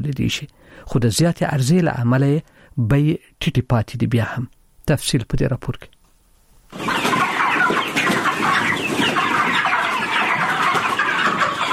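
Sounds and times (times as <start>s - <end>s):
speech: 0.0s - 5.9s
thousands of broiler chickens cheeping and clucking on a poultry farm in Kandahar: 6.1s - 11.7s.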